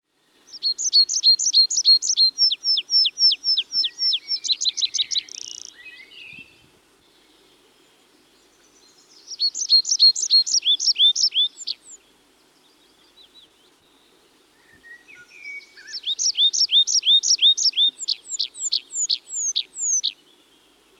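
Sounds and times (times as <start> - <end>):
Tree pipit Anthus trivialis song: 0.2 - 20.9.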